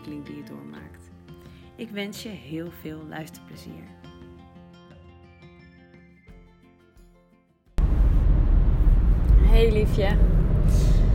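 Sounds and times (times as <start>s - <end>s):
speech: 0.0s - 4.1s, 9.6s - 10.9s
road and engine rumble inside a moving car: 7.8s - 11.1s.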